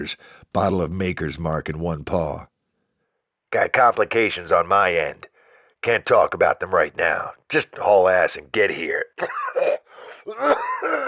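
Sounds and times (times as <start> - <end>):
speech: 0.0 - 2.5, 3.5 - 9.5, 10.3 - 11.0
man acting out a raspy cough: 9.2 - 11.0
wheezy breath: 9.9 - 10.3.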